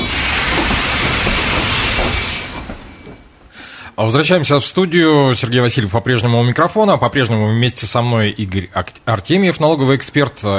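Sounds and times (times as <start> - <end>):
metro train rush of air and rail noise starting to move: 0.0 - 3.9
speech: 4.0 - 10.5.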